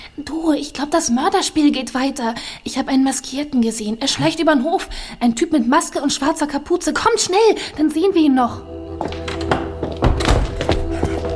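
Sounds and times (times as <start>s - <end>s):
speech: 0.2s - 9.2s
door being pushed shut with wooden thunks: 9.0s - 10.9s.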